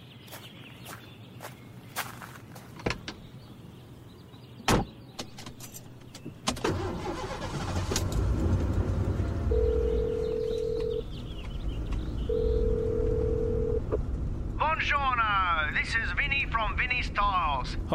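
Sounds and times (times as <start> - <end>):
low road and engine rumble in a moving car's cabin: 0.0 - 17.9
long electronic ringing tones from a phone call: 9.5 - 11.1, 12.3 - 13.9.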